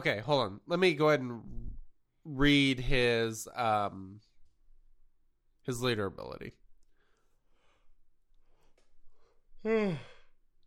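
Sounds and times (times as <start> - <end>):
speech: 0.0 - 1.6, 2.3 - 4.3, 5.6 - 6.6, 9.6 - 10.1
person yawning: 9.6 - 10.4.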